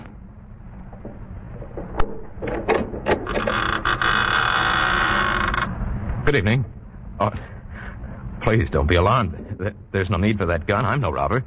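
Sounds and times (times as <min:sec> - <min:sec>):
clunks and rattling of large wooden door being worked open: 0:00.9 - 0:03.9
large wooden door creaking open: 0:00.9 - 0:05.8
speech: 0:06.3 - 0:07.5, 0:08.5 - 0:11.4.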